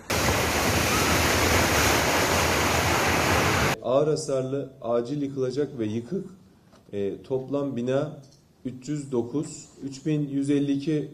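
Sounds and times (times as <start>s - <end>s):
seawater surging ashore after an earthquake sweeping boats along: 0.0s - 3.8s
speech: 3.9s - 11.1s.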